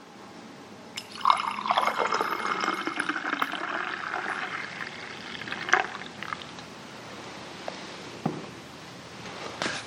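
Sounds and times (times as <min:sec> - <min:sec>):
liquid poured into a communion cup: 0:01.0 - 0:06.6.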